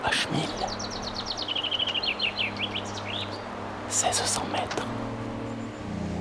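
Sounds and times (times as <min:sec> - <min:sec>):
bird chirping and trilling: 0:00.0 - 0:06.1
speech: 0:04.0 - 0:05.3.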